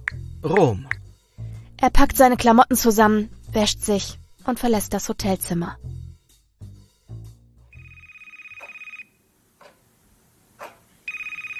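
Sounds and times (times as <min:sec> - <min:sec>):
speech: 0:00.4 - 0:01.0, 0:01.8 - 0:05.9
telephone bell ringing: 0:07.8 - 0:09.2, 0:11.1 - 0:11.5.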